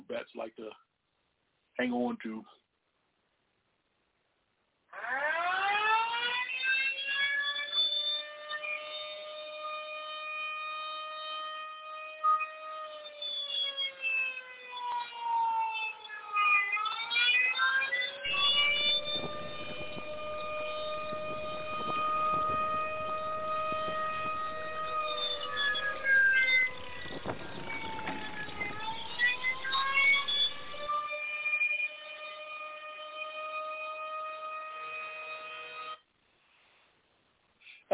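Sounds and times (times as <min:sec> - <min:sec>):
speech: 0:00.1 - 0:00.9, 0:01.8 - 0:02.6
alarm siren signalling switch to phone calls: 0:04.9 - 0:36.0.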